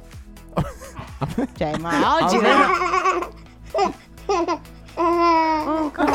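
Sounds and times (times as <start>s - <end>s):
speech: 0.6s - 4.7s
baby laughing and babbling: 1.8s - 6.1s.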